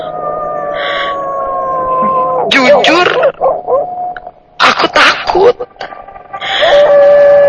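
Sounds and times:
neighbor's dog howling: 0:00.0 - 0:04.3, 0:05.9 - 0:07.4
speech: 0:02.5 - 0:03.9, 0:05.4 - 0:05.7.

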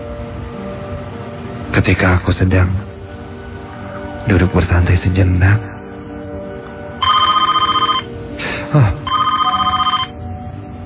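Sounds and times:
speech: 0:01.7 - 0:02.8, 0:04.2 - 0:05.7, 0:08.7 - 0:09.0
telephone bell ringing: 0:07.0 - 0:08.2, 0:09.1 - 0:10.2.

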